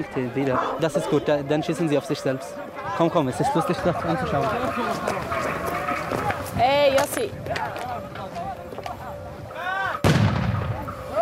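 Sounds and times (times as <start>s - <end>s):
speech: 0.0s - 5.4s, 6.1s - 8.2s
grenade explosion: 10.0s - 11.0s.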